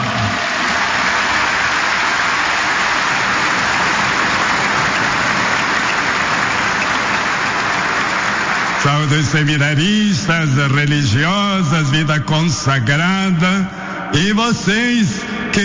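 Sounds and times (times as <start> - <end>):
large crowd applauding: 0.0 - 9.9
speech: 9.3 - 15.6.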